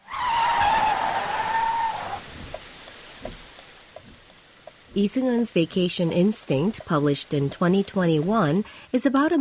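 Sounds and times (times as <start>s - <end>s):
car skidding hard with loud tire squeal: 0.0s - 2.3s
speech: 5.0s - 9.3s.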